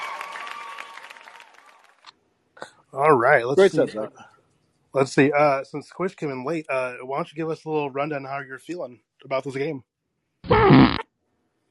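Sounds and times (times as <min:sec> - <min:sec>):
speech: 0:02.9 - 0:04.3, 0:04.9 - 0:09.9, 0:10.5 - 0:11.0
mouth raspberry imitating a fart: 0:10.4 - 0:11.1.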